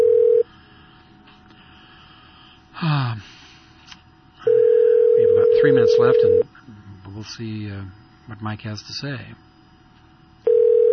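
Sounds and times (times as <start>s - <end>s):
telephone ringback tone: 0.0s - 0.4s, 4.4s - 6.4s, 10.5s - 10.9s
speech: 5.7s - 6.5s, 7.2s - 9.5s.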